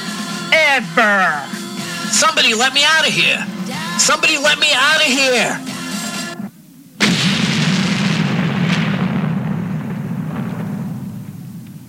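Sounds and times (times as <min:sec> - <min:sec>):
speech: 0:00.8 - 0:05.7
heavy rumble: 0:02.8 - 0:11.8
loud explosion: 0:07.0 - 0:11.8.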